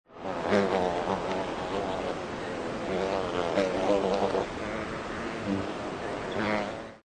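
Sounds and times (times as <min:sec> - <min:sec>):
bumblebee: 0:00.1 - 0:07.0.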